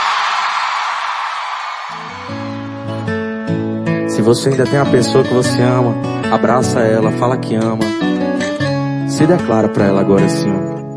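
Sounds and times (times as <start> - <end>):
large crowd shouting and cheering: 0.0 - 3.9
speech: 4.2 - 8.0, 9.2 - 10.8.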